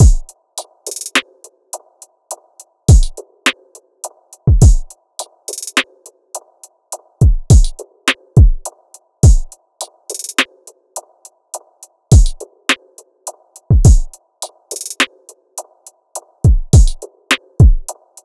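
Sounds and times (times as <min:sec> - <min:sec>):
RnB drum loop at 104 BPM: 0:00.0 - 0:01.5, 0:02.5 - 0:06.6, 0:07.2 - 0:10.7, 0:12.1 - 0:15.4, 0:16.2 - 0:18.2.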